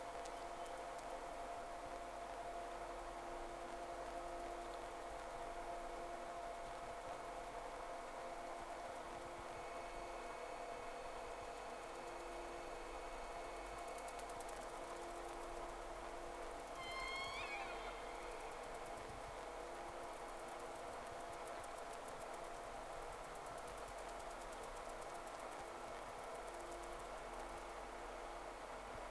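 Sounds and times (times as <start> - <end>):
constant low hum: 0.0 - 29.0
steady hiss: 0.0 - 29.0
whistles of two whales: 16.8 - 18.5.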